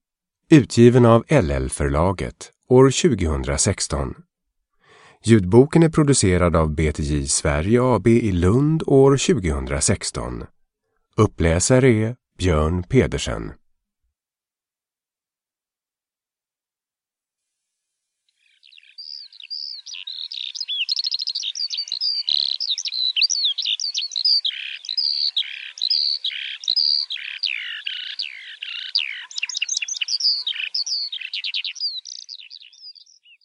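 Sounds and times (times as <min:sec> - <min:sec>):
speech: 0:00.5 - 0:04.3, 0:05.2 - 0:10.6, 0:11.2 - 0:13.6
birds chirping and singing: 0:18.4 - 0:33.4.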